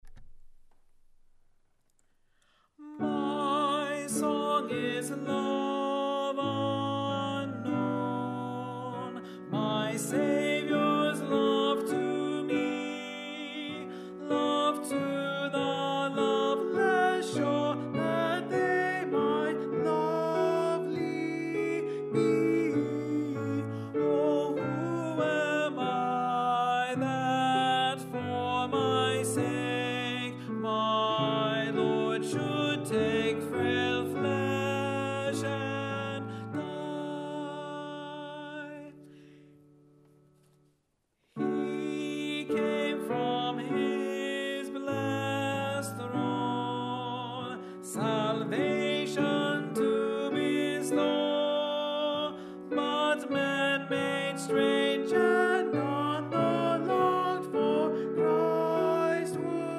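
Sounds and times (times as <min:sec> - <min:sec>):
alto voice singing: 0:02.8 - 0:39.2, 0:41.4 - 0:59.7.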